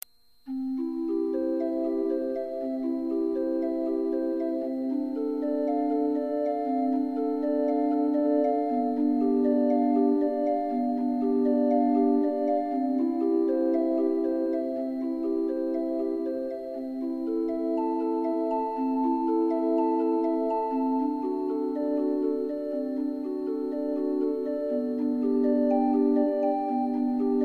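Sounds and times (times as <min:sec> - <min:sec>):
prelude: 0:00.5 - 0:27.4.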